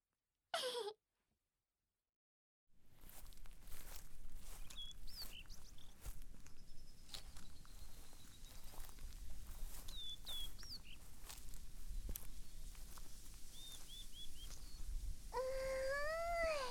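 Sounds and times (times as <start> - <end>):
crunchy footsteps walking through a garden: 2.8 - 15.8
faint bird chirps: 4.5 - 11.1, 13.5 - 16.7.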